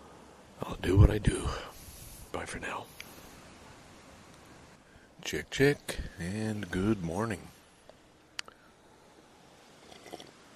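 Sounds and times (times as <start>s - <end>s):
low outdoor hush: 0.0s - 10.5s
speech: 0.6s - 1.7s, 2.3s - 3.0s, 5.2s - 7.5s
slurping sip of instant coffee: 9.8s - 10.4s.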